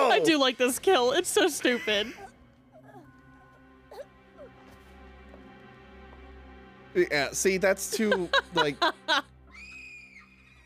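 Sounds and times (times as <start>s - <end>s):
speech: 0.2s - 2.3s, 6.9s - 9.3s
laughter: 7.8s - 9.3s
single high-pitched scream: 9.5s - 10.6s.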